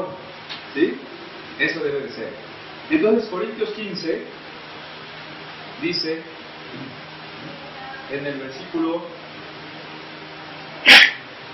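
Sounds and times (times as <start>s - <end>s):
speech: 0.8s - 4.5s, 5.8s - 7.0s, 8.1s - 9.2s
person sneezing: 10.8s - 11.2s.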